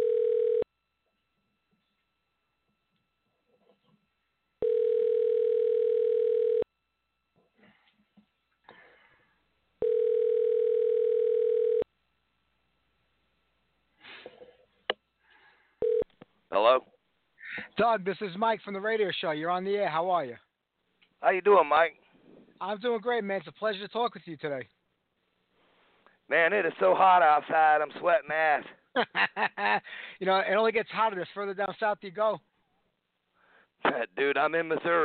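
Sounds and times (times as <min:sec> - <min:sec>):
telephone ringback tone while placing a call: 0:00.0 - 0:00.7, 0:04.6 - 0:06.7, 0:09.8 - 0:11.9, 0:15.8 - 0:16.1
speech: 0:16.6 - 0:16.9, 0:17.8 - 0:20.4, 0:21.2 - 0:22.0, 0:22.6 - 0:24.8, 0:26.3 - 0:32.5, 0:33.8 - 0:35.0
laughter: 0:29.0 - 0:29.9.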